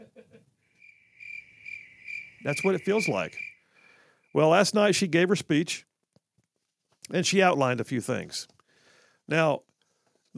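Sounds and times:
cricket chirping: 0.7s - 4.5s
speech: 2.4s - 3.5s, 4.4s - 5.9s, 7.1s - 8.6s, 9.3s - 9.7s.

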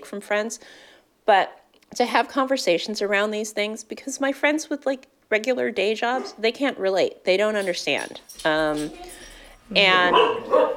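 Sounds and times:
speech: 0.1s - 10.7s
dog barking and yipping: 7.9s - 10.7s.

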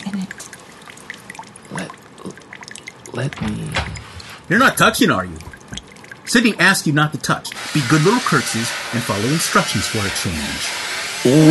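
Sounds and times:
small splashes: 0.0s - 6.5s
liquid dripping: 0.0s - 10.2s
speech: 3.2s - 5.6s, 6.3s - 11.4s.

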